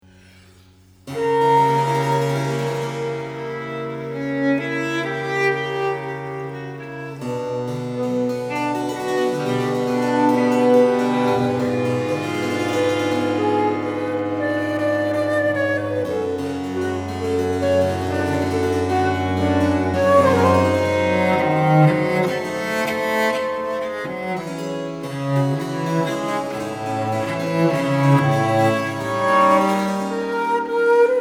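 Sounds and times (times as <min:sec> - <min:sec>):
flute: 0:01.1 - 0:06.4, 0:08.0 - 0:23.8, 0:27.0 - 0:31.1
basso continuo: 0:01.1 - 0:31.1
violin: 0:01.1 - 0:31.1.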